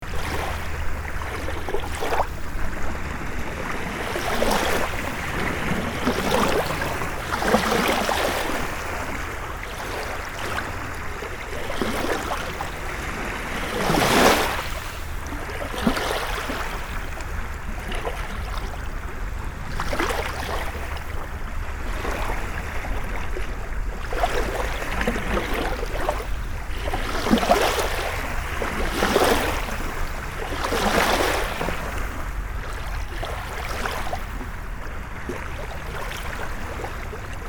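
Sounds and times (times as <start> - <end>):
surf: 0.0 - 37.4.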